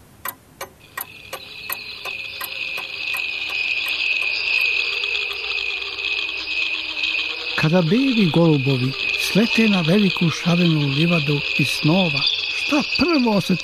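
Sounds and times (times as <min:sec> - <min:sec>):
sharp clicks: 0:00.0 - 0:04.3
cricket chirping: 0:00.7 - 0:13.6
speech: 0:07.6 - 0:13.6.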